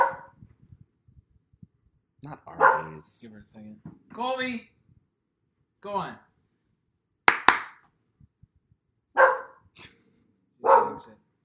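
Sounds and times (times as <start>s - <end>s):
dog barking sharply: 0.0s - 0.3s, 2.6s - 3.0s, 9.2s - 9.6s, 10.6s - 11.1s
speech: 2.2s - 4.8s, 5.8s - 6.3s.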